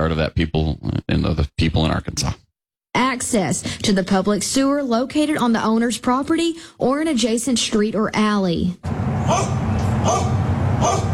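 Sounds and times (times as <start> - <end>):
speech: 0.0 - 2.4, 3.0 - 11.1
dogs barking: 9.2 - 11.1.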